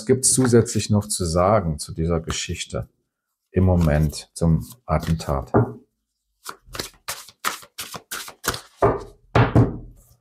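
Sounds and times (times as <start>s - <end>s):
speech: 0.0s - 3.0s, 3.6s - 5.8s
tarot cards being drawn with crisp flicks: 6.4s - 8.8s.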